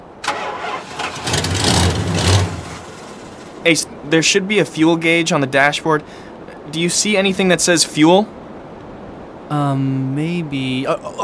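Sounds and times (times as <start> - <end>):
car engine cranking, trying to start: 0.0 - 3.7
speech: 3.6 - 8.4, 9.5 - 11.2.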